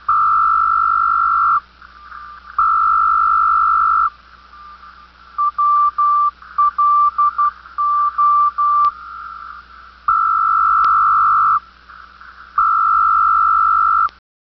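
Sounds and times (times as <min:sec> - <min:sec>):
SITOR-A Telex-Over-Radio marker signal: 0:00.0 - 0:14.2.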